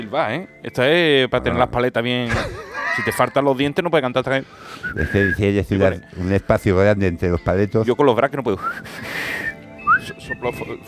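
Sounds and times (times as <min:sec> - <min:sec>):
speech: 0:00.0 - 0:09.5, 0:10.1 - 0:10.8
laughter: 0:02.3 - 0:03.6
person whistling short breathy notes: 0:04.6 - 0:05.6, 0:08.6 - 0:10.7.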